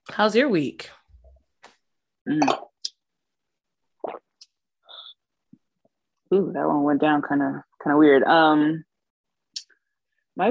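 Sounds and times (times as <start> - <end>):
speech: 0.1 - 1.0, 2.3 - 2.6, 6.3 - 8.9
wine glasses clinking in a toast: 2.4 - 2.7
sipping: 4.0 - 5.2.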